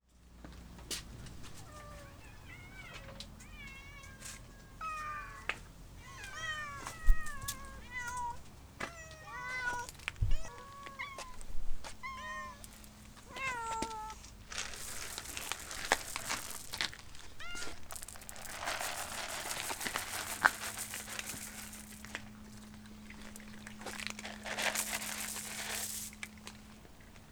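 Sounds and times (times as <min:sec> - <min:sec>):
crinkling and rustling: 0:00.2 - 0:27.2
cat meowing at feeding time: 0:01.6 - 0:14.2, 0:17.3 - 0:17.8.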